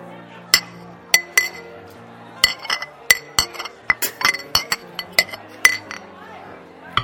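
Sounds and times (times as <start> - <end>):
faint voices murmuring: 0.0 - 7.0
beer glasses clinking in a toast: 0.6 - 1.8, 2.4 - 6.0.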